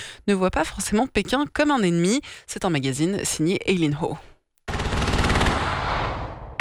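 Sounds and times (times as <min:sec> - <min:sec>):
speech: 0:00.2 - 0:04.3
blast: 0:04.7 - 0:06.6
heavy military weapons fire during military exercise: 0:04.7 - 0:06.6.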